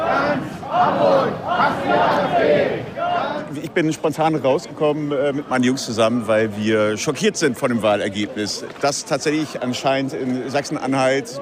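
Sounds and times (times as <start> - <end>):
protest crowd chanting against the AfD: 0.0 - 3.7
speech: 0.1 - 11.4.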